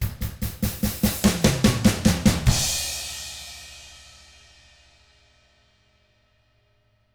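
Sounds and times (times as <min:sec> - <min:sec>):
rock drums in 6-8 time: 0:00.0 - 0:03.7.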